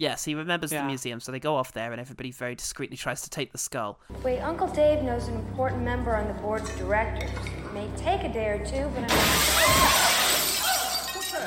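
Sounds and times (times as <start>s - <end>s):
speech: 0.0s - 10.0s
glass shattering: 9.1s - 11.4s
tinkling glass shards settling: 9.4s - 11.4s.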